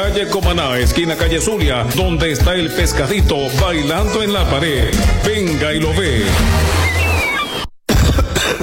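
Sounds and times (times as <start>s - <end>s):
speech: 0.1s - 6.9s
person with a cough coughing harshly in a radio advertisement: 7.9s - 8.6s.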